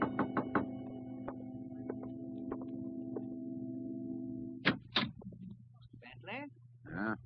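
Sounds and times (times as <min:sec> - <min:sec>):
knocking on a door at night: 0:00.0 - 0:03.3
steady low hum: 0:00.0 - 0:07.2.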